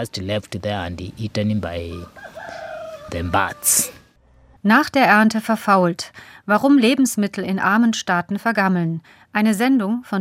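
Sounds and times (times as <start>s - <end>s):
speech: 0.0s - 2.4s, 3.1s - 4.0s, 4.6s - 10.2s
hens clucking in a farmyard: 1.7s - 4.0s
rooster crowing: 1.9s - 4.5s.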